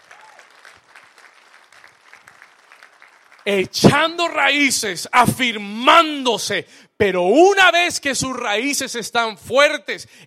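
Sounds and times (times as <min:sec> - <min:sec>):
audience applauding: 0:00.0 - 0:03.7
speech: 0:03.4 - 0:10.2.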